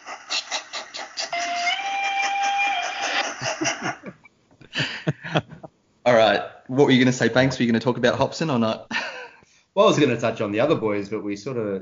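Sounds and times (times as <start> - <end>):
steam train chuffing and hissing steam: 0.0 - 1.7
laughter: 0.6 - 5.7
speech: 6.8 - 9.0, 9.8 - 11.8.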